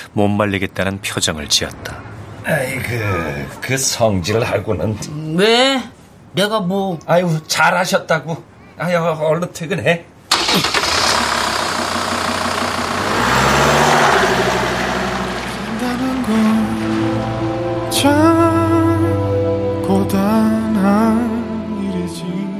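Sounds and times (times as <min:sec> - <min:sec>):
speech: 0:00.2 - 0:10.8
truck engine cranking, revving and idling: 0:10.3 - 0:21.4.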